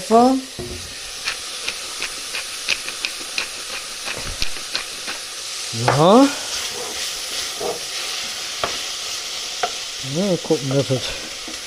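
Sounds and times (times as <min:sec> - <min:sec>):
food sizzling and frying in a pan: 0:00.0 - 0:11.6
speech: 0:00.1 - 0:00.7, 0:05.8 - 0:06.4, 0:10.1 - 0:11.3
sharp pops or scrapes: 0:00.6 - 0:09.0.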